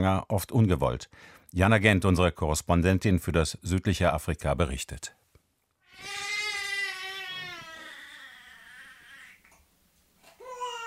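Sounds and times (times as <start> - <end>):
speech: 0.0 - 5.2
three-month-old baby crying: 5.9 - 9.5, 10.4 - 10.8.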